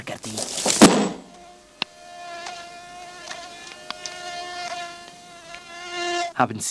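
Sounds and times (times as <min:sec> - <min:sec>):
fly buzzing on a man's face in hot weather: 0:00.2 - 0:06.4
sharp little ticks and taps: 0:03.2 - 0:05.6
speech: 0:06.4 - 0:06.6.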